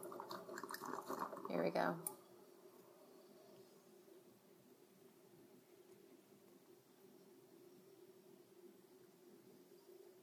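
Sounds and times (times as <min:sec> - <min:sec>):
water trickling and dripping from a pour-over coffee machine: 0:00.0 - 0:02.2
speech: 0:01.5 - 0:02.1.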